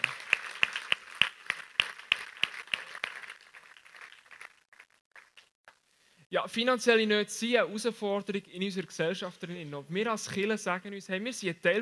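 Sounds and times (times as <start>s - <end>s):
audience applause: 0.0s - 5.4s
speech: 6.3s - 11.7s.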